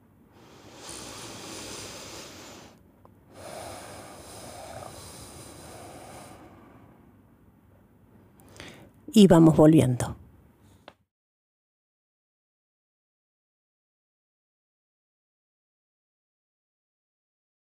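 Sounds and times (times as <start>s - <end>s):
deep breaths in and out close to the microphone: 0.3s - 7.3s, 8.4s - 9.0s
speech: 9.1s - 10.2s.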